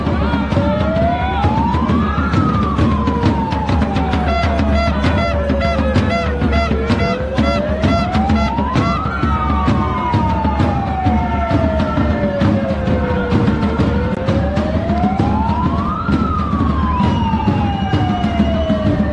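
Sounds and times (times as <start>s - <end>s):
protesters shouting: 0.0s - 13.9s
roar of a protest crowd in a Paris street: 0.0s - 19.1s
siren wailing up and down in Paris: 0.0s - 19.1s.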